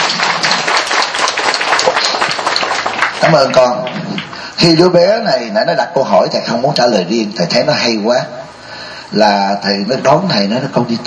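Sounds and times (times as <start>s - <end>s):
audience applauding: 0.0s - 4.9s
speech: 3.3s - 4.0s, 4.6s - 8.4s, 9.1s - 11.0s.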